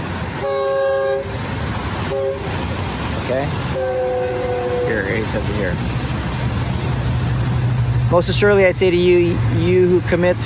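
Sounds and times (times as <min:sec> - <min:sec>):
train rumbling past: 0:00.0 - 0:10.4
train horn blast: 0:00.4 - 0:01.4, 0:02.0 - 0:02.6, 0:03.7 - 0:05.2
speech: 0:03.3 - 0:03.9, 0:04.9 - 0:06.1, 0:08.1 - 0:10.4.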